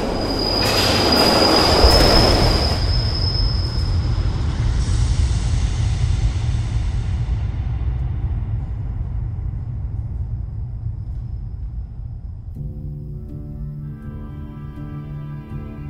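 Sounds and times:
train wheels squealing: 0.0 - 5.1
train rumbling on the tracks: 0.0 - 14.4.

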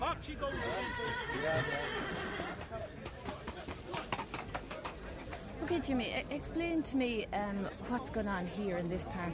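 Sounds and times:
speech: 0.2 - 3.1, 5.7 - 9.3
trotting horse whinnying at a fairground: 0.6 - 2.6
faint hoof clatter: 0.9 - 5.6.

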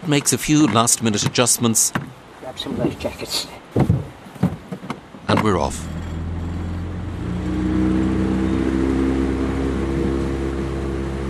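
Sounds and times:
speech: 0.1 - 3.9, 5.4 - 6.0
motorboat engine idling and revving on the River Shannon: 5.3 - 11.2.

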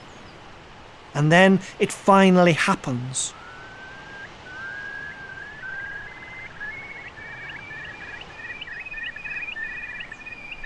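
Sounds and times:
steady background noise: 0.0 - 10.6
speech: 1.2 - 3.4
Eurasian curlew calling on an island: 3.3 - 10.6.

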